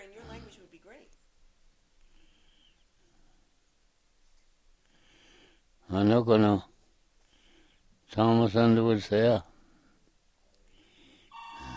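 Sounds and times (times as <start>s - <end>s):
faint noise: 0.0s - 11.7s
speech: 5.9s - 6.7s, 8.1s - 9.5s
telephone ringing with a steady electronic tone: 11.3s - 11.7s.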